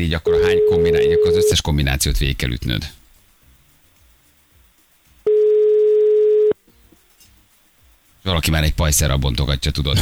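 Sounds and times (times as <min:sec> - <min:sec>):
speech: 0:00.0 - 0:03.0, 0:08.2 - 0:10.0
faint noise: 0:00.0 - 0:10.0
telephone ringing tone electronic beep: 0:00.2 - 0:01.6, 0:05.3 - 0:06.6.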